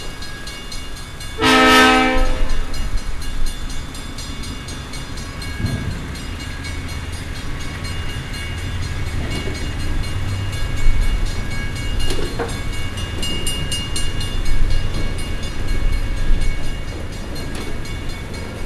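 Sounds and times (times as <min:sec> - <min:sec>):
freight train crossing: 0:00.0 - 0:18.6.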